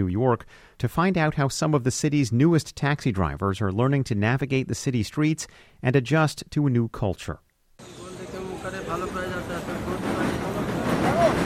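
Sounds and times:
speech: 0.0 - 7.4, 8.6 - 10.0
elevated L train in New York rumbling overhead: 7.8 - 11.4
street bustle: 7.8 - 11.4.

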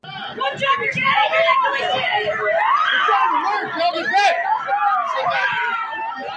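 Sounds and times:
agitated crowd chatter: 0.0 - 6.3
frantic parents screaming outside a school: 0.0 - 6.3.

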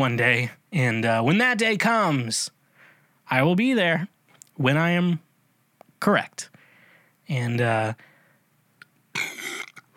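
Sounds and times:
speech: 0.0 - 2.6, 3.3 - 5.2, 6.0 - 6.6, 7.3 - 8.1
human burp: 9.2 - 9.9.

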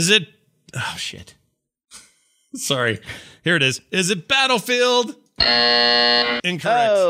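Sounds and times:
speech: 0.0 - 1.4, 2.5 - 7.0
game show buzzer during a video game guessing quiz: 5.4 - 6.4.

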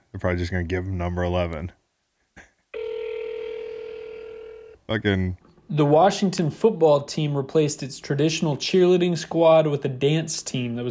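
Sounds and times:
speech: 0.2 - 1.8, 4.9 - 10.8
phone line ringing with a steady electronic tone: 2.8 - 4.8.

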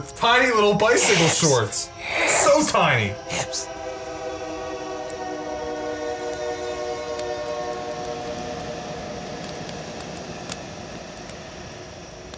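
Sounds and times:
speech: 0.0 - 3.8
passing train rumbling: 0.0 - 12.3
sustained droning horn-like tone: 2.8 - 10.8.

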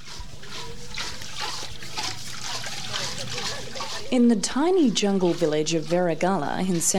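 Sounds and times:
water splashing from hand-pumped well: 0.0 - 6.9
several people chatting: 3.2 - 6.9
speech: 4.1 - 6.9.

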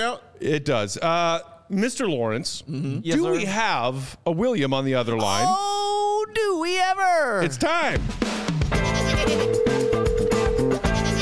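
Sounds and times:
speech: 0.0 - 8.7
goat bleating sound effect: 8.8 - 9.6, 10.8 - 11.2.

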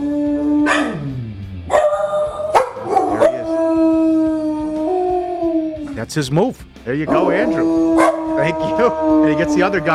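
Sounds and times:
dog howling at fire trucks: 0.0 - 6.0, 7.1 - 9.9
speech: 6.1 - 9.9.

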